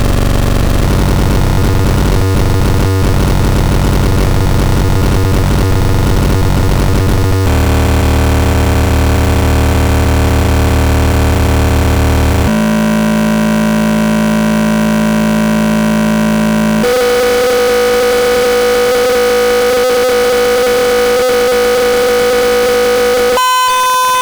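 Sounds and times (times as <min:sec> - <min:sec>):
synthesizer triple sine tones with chaotic octave pitch variation: 0:00.2 - 0:24.1.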